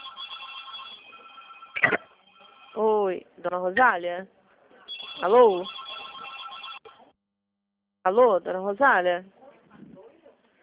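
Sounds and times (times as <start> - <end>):
telephone ringing: 0.0 - 2.8, 4.9 - 7.0
speech: 2.8 - 4.4, 5.2 - 5.8, 8.0 - 9.4.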